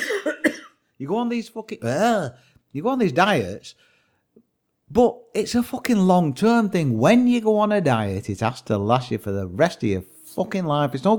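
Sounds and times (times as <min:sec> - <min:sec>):
short raspy cough: 0:00.0 - 0:00.8
speech: 0:01.0 - 0:03.9, 0:04.9 - 0:11.1.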